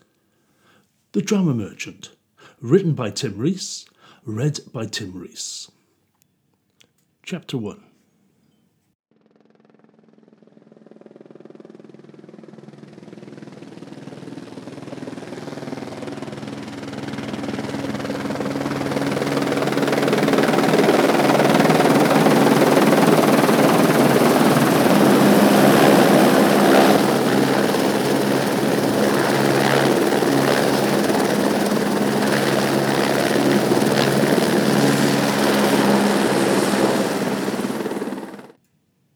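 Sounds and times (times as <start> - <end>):
speech: 1.2 - 5.8, 7.3 - 7.9
helicopter rotor drone: 9.4 - 38.6.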